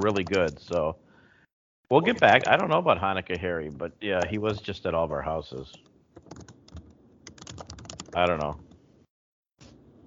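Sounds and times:
typing on a computer keyboard: 0.0 - 0.9, 2.0 - 2.8, 5.7 - 8.6
speech: 0.0 - 1.0, 1.9 - 6.4, 8.2 - 8.6.

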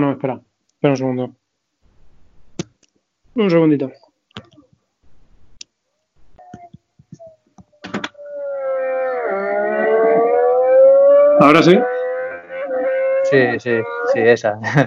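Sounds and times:
speech: 0.0 - 1.4, 3.4 - 4.5, 11.4 - 12.0, 13.3 - 14.8
six-cylinder engine of an old 1000 cc naked motorcycle revving: 8.3 - 14.2
laughter: 14.6 - 14.8.

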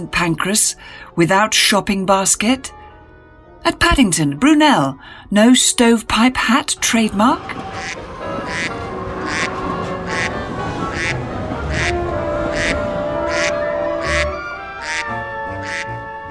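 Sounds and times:
speech: 0.0 - 2.8, 3.6 - 9.4
busy noisy background: 6.1 - 15.8
duck quacking: 7.6 - 16.0.

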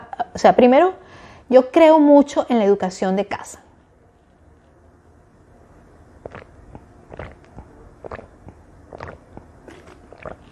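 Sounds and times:
speech: 0.4 - 3.6
person drinking water: 6.2 - 10.4.

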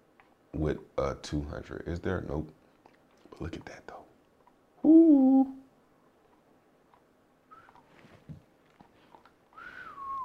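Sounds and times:
speech: 0.6 - 2.6, 3.4 - 4.0, 4.8 - 5.6
faint rustling: 6.1 - 9.9
person whistling: 7.5 - 7.8, 9.6 - 10.2.

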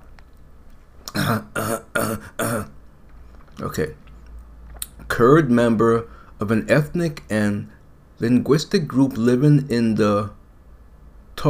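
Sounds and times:
person clearing throat: 1.1 - 2.8
speech: 1.3 - 2.6, 3.6 - 4.0, 5.2 - 10.4.

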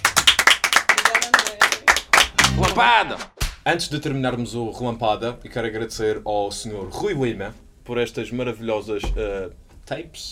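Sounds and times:
small group applauding: 0.0 - 3.0
speech: 2.8 - 10.3.

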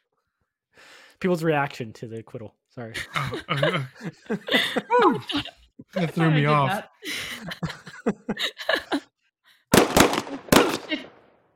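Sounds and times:
speech: 1.2 - 8.7
laughter: 2.9 - 9.1
shrill excited vocal sounds: 4.8 - 7.0
soundboard gunshot sound effects: 9.7 - 11.3.

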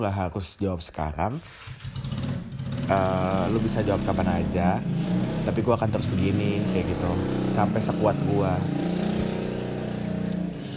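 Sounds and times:
speech: 0.0 - 2.1, 2.9 - 8.9
loud passing motorcycle engine roaring with harmonic whine: 1.4 - 10.7.

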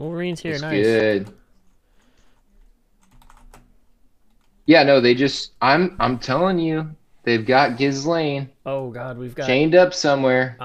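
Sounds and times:
speech: 0.0 - 1.4, 4.7 - 10.6
typing on a computer keyboard: 3.0 - 3.7.

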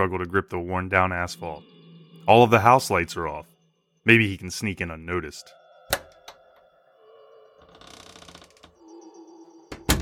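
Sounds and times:
speech: 0.0 - 1.7, 2.3 - 5.6
side door of a house creaking open: 7.6 - 8.8, 9.7 - 10.0.

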